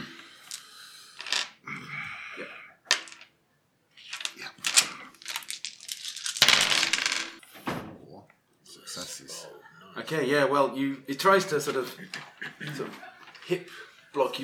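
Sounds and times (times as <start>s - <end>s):
dice rattling and tumbling across a hard surface: 0.0s - 1.6s, 2.9s - 3.3s, 4.0s - 7.4s
laughter: 8.7s - 14.4s
speech: 10.0s - 14.4s.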